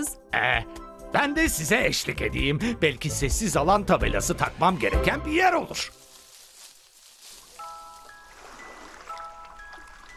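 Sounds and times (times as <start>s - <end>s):
speech: 0.0s - 6.0s
ocean waves at a nature park: 7.6s - 10.1s.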